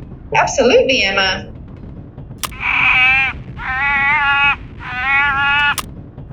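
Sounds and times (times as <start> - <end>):
low rumble: 0.0 - 6.3
speech: 0.3 - 1.6
faint clicks: 2.4 - 2.6, 5.6 - 5.9
hungry harbor seal pup calling with bleating wail: 2.6 - 5.8.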